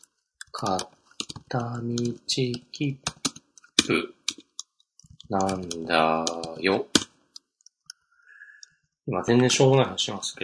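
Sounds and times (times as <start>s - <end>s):
keyboard clicks: 0.4s - 7.1s
speech: 0.6s - 3.1s, 3.9s - 4.1s, 5.3s - 7.0s, 9.1s - 10.4s.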